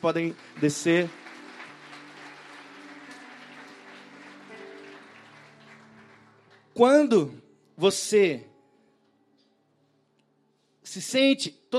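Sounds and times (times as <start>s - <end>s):
speech: 0.0s - 1.2s, 6.8s - 8.5s, 10.9s - 11.7s
large audience applause: 0.0s - 7.0s
faint low sustained musical tones: 0.0s - 11.7s.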